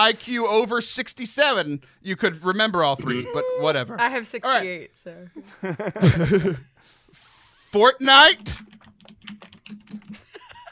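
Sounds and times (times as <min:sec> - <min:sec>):
speech: 0:00.0 - 0:06.7, 0:07.7 - 0:09.4
laughter: 0:02.8 - 0:04.0, 0:05.4 - 0:06.8, 0:10.1 - 0:10.7
typing on a computer keyboard: 0:08.4 - 0:10.4.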